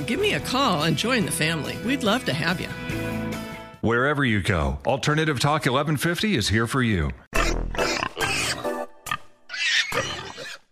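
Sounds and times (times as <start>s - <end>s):
speech: 0.1s - 3.1s, 3.8s - 7.2s
pigs squealing and grunting: 7.4s - 8.7s, 9.5s - 10.7s.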